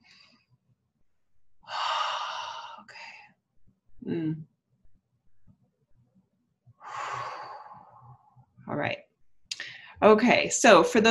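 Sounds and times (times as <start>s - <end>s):
deep breath drawn in: 1.6s - 3.3s, 6.8s - 8.4s
speech: 4.0s - 4.5s, 10.0s - 11.0s.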